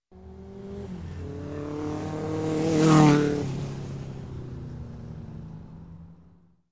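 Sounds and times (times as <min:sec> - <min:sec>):
bike passing by fast: 0:00.2 - 0:05.5.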